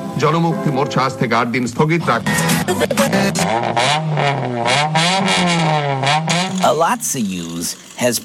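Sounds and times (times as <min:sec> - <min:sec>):
speech: 0:00.2 - 0:08.2
old car engine revving: 0:01.7 - 0:08.2.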